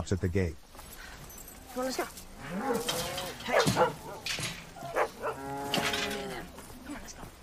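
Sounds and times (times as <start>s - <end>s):
speech: 0.0s - 0.6s, 1.8s - 4.5s
steady outdoor noise: 0.0s - 7.4s
cows mooing in a field: 2.4s - 6.5s.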